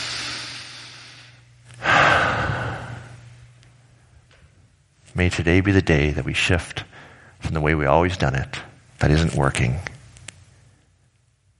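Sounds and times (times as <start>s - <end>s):
person taking a deep breath: 0.0s - 3.2s, 6.9s - 7.4s
speech: 5.2s - 9.9s.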